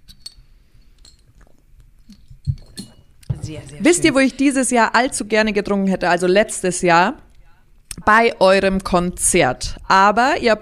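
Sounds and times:
glasses clinking in a toast: 2.2 - 4.3
speech: 3.5 - 7.3, 8.0 - 10.6.

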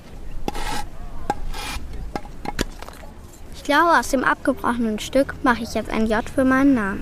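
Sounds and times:
file scraping across porous stone: 0.5 - 1.8
speech: 3.7 - 7.0.

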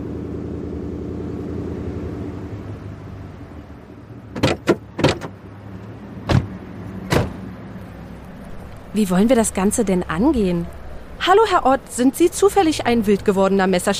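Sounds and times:
car engine humming while pulling into a parking lot: 0.0 - 13.9
sharp thumps and clicks: 4.3 - 5.4
speech: 9.0 - 13.9.

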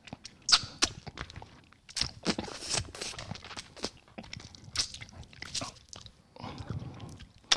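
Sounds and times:
biting and crunching a hard candy lollipop: 0.1 - 5.9.

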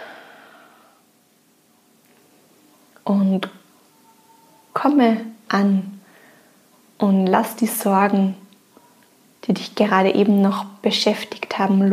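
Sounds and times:
deep breathing in and out during a guided relaxation exercise: 0.0 - 1.0
speech: 3.1 - 3.6, 4.8 - 6.0, 7.0 - 8.4, 9.5 - 11.9.

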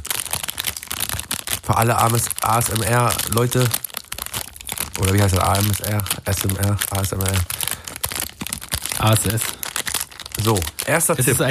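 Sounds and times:
plastic wrapper of a Kinder Country candy bar crinkling: 0.0 - 11.4
speech: 1.7 - 3.8, 5.0 - 7.7, 9.0 - 9.6, 10.4 - 11.4.

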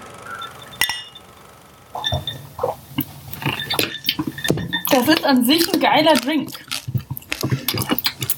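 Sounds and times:
glasses clinking during a toast with drinks: 2.0 - 2.4, 3.0 - 5.2
loud crunching while chewing: 2.6 - 8.3
speech: 5.0 - 6.6.

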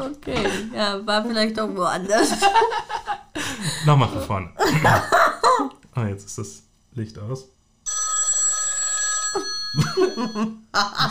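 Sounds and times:
speech: 0.0 - 7.6, 9.3 - 11.0
telephone electronic ringtone with an incoming call: 7.9 - 10.6.

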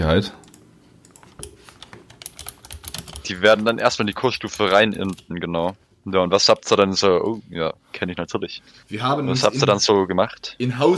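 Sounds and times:
speech: 0.1 - 0.4, 3.3 - 10.9
typing a message on a computer keyboard: 0.4 - 5.2.

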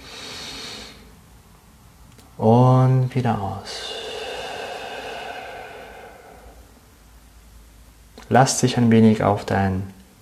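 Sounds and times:
deep slow inhalation through the nose: 0.0 - 1.1, 3.6 - 7.1
speech: 2.4 - 3.9, 8.3 - 10.0.

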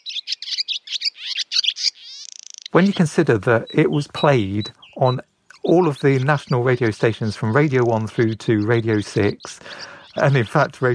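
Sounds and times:
bird chirping and trilling: 0.0 - 10.9
speech: 2.7 - 10.9.

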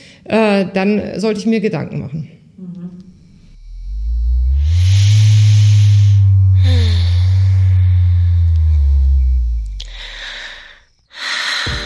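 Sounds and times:
speech: 0.2 - 2.7
vibrator low-pitched electric buzzing: 2.6 - 11.2
breathy noise: 2.6 - 11.8.

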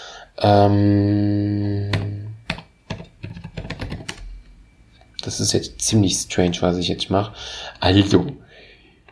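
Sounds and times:
speech: 0.4 - 1.9, 5.3 - 8.4
computer keyboard typing: 1.9 - 4.3.

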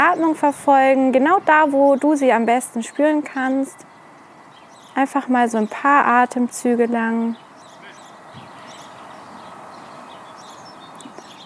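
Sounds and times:
speech: 0.0 - 3.9, 5.0 - 7.4
birds singing and chirping outdoors: 0.0 - 11.4.

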